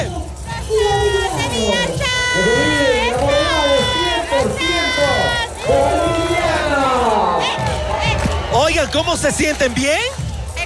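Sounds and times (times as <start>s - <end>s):
group of girls shouting and cheering: 0.0s - 9.6s
speech: 8.9s - 10.2s.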